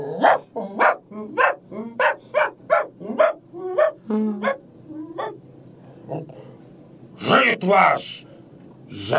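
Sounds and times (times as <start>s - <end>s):
dog barking: 0.2s - 4.6s
speech: 7.7s - 8.3s, 8.9s - 9.1s.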